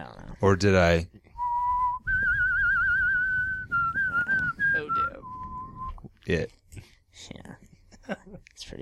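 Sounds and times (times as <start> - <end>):
speech: 0.4 - 1.2, 6.3 - 6.6, 8.6 - 8.8
person whistling with trilling vibrato: 1.4 - 6.1.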